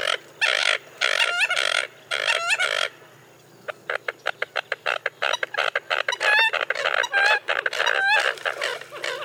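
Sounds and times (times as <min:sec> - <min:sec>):
American coot flock calling with burps, chuckles and squawks: 0:00.0 - 0:09.2.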